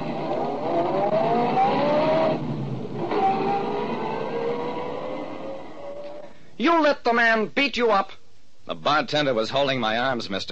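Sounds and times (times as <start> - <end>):
car engine revving and accelerating as the car drives off: 0.0 - 6.2
speech: 6.6 - 10.5.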